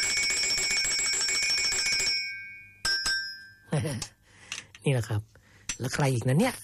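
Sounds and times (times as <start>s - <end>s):
small metal bell ringing: 0.0s - 4.0s
speech: 3.8s - 4.2s, 4.8s - 6.6s.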